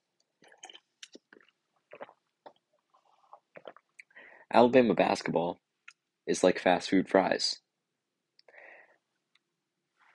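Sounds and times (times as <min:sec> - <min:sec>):
person sipping water with slurps, gulps and mouth clicks: 0:00.4 - 0:04.2
speech: 0:04.5 - 0:05.7, 0:06.3 - 0:07.6.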